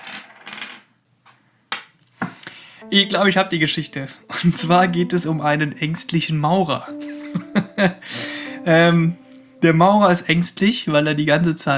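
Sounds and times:
dice being shaken and rolled: 0:00.0 - 0:00.8
speech: 0:02.8 - 0:11.7.

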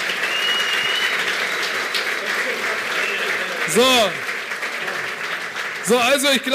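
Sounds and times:
crowd applauding with dense sustained clapping: 0:00.0 - 0:06.5
brief rising-and-falling whistle or cheer: 0:00.2 - 0:02.0, 0:02.9 - 0:03.6
speech: 0:03.7 - 0:04.3, 0:05.9 - 0:06.5.

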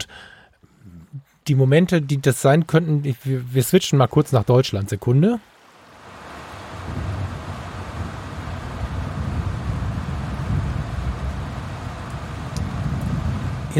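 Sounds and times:
wind at a train stop in Germany: 0:00.0 - 0:13.7
speech: 0:01.5 - 0:05.5
rain at a train stop in Germany on a cold day: 0:01.7 - 0:13.7
deep continuous rumble of distant thunder: 0:06.7 - 0:13.7.

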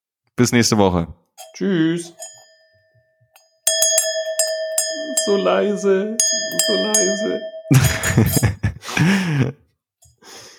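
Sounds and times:
speech: 0:00.4 - 0:02.3, 0:05.3 - 0:09.6
ding-dong bell chime ringing: 0:01.4 - 0:08.6
laughter: 0:07.7 - 0:09.6.

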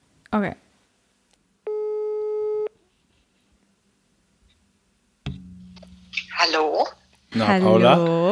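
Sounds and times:
speech: 0:00.3 - 0:00.6, 0:06.6 - 0:08.3
telephone ringback tone while placing a call: 0:01.7 - 0:02.7.

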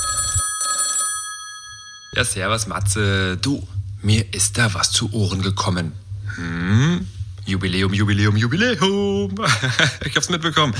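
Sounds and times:
telephone ringing with electronic trilling: 0:00.0 - 0:02.2
speech: 0:02.1 - 0:10.7
laughter: 0:09.3 - 0:10.7.

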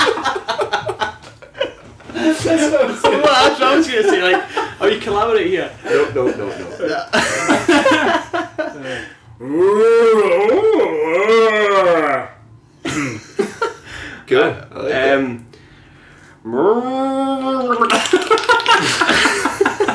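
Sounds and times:
laughter: 0:00.0 - 0:05.2, 0:05.8 - 0:09.1, 0:12.9 - 0:13.9, 0:17.8 - 0:19.9
speech: 0:02.4 - 0:12.1, 0:14.3 - 0:15.4, 0:16.4 - 0:18.0
people imitating two cows mooing: 0:09.4 - 0:12.4.

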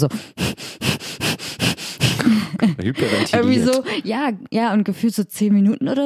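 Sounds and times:
speech: 0:00.0 - 0:00.5, 0:02.8 - 0:06.0
person imitating heavy loud breathing: 0:00.0 - 0:04.0
laughter: 0:02.2 - 0:04.1.

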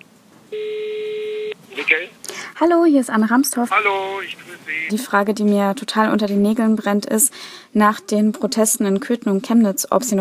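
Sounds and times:
speech: 0:00.5 - 0:00.8, 0:01.8 - 0:10.1
telephone ringback tone while a call is placed: 0:00.5 - 0:01.6.

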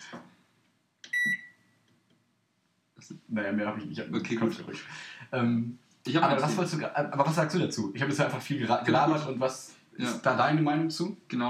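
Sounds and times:
microwave oven electronic beep: 0:01.1 - 0:01.6
speech: 0:03.2 - 0:11.4.

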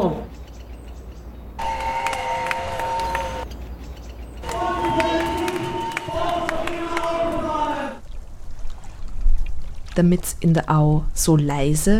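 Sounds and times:
street crowd of protesters roaring in Vienna city centre: 0:01.6 - 0:03.4, 0:04.4 - 0:08.0
shrill horns or whistles blasting: 0:01.6 - 0:03.5, 0:04.4 - 0:08.0
speech: 0:10.0 - 0:11.9.

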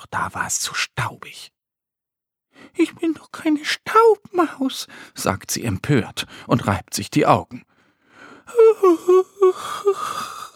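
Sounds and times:
speech: 0:00.1 - 0:01.6, 0:02.6 - 0:07.7, 0:08.5 - 0:10.4
person imitating the yawn of a little bat: 0:08.5 - 0:10.5.

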